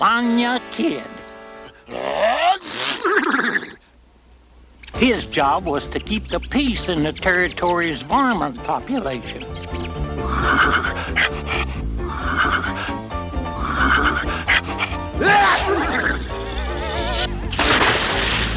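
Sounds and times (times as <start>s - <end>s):
speech: 0.0s - 1.2s, 5.0s - 9.9s
steady musical backing: 0.0s - 2.3s, 4.9s - 18.5s
horse neighing: 1.9s - 3.8s, 9.9s - 17.4s.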